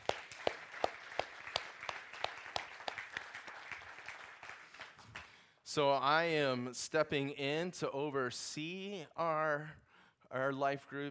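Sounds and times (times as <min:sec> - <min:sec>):
audience applause: 0:00.0 - 0:05.3
speech: 0:05.7 - 0:11.0.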